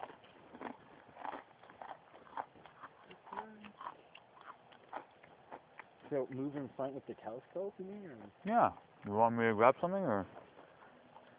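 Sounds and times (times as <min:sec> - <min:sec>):
crunchy dry snack being bitten and chewed: 0:00.0 - 0:06.1, 0:11.2 - 0:11.3
speech: 0:06.1 - 0:10.4.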